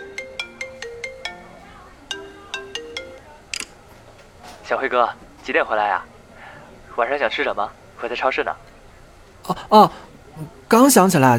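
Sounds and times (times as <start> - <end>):
phone ringing with an incoming call: 0.0 - 3.3
speech: 4.7 - 6.1, 7.0 - 8.7, 9.5 - 11.3.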